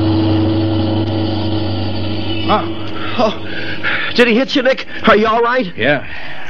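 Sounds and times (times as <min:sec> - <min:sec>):
higher wavering tone: 0:00.0 - 0:04.7
car engine roaring: 0:00.0 - 0:05.1
speech: 0:02.5 - 0:06.4.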